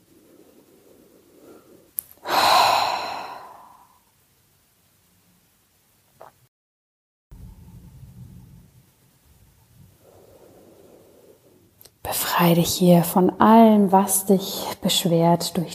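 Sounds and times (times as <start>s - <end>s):
loud exhalation through the mouth in a relaxation breathing exercise: 2.1s - 4.0s
speech: 12.4s - 15.7s.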